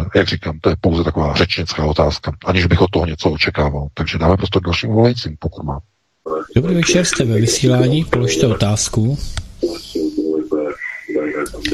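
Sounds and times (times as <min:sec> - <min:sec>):
speech: 0:00.1 - 0:09.8
radio voices in the background of a phone line: 0:06.3 - 0:11.7.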